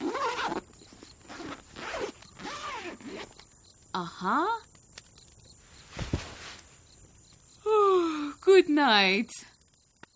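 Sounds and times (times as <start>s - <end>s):
sleeping bag zipper being zipped up: 0.0s - 3.4s
speech: 4.0s - 4.7s, 8.6s - 9.5s.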